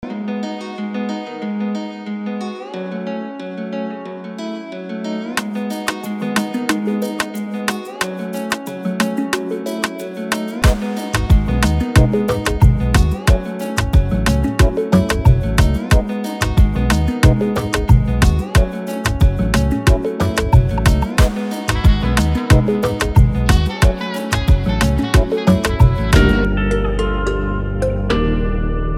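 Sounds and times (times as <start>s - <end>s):
Afrobeats guitars: 0.0s - 28.9s.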